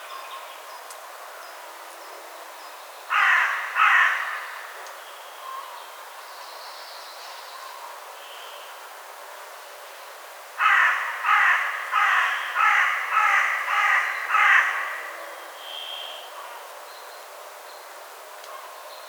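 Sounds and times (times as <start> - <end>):
Carrion crow Corvus corone cawing: 3.1 - 4.7, 10.6 - 15.2.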